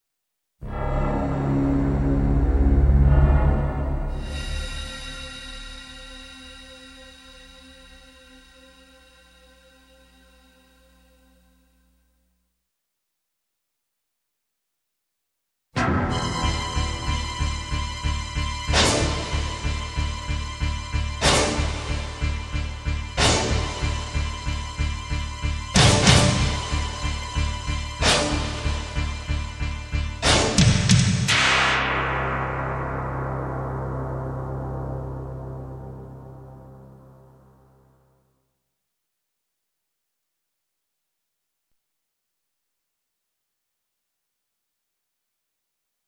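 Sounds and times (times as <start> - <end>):
ambient suspense and mystery music: 0.6 - 11.7, 15.8 - 38.2.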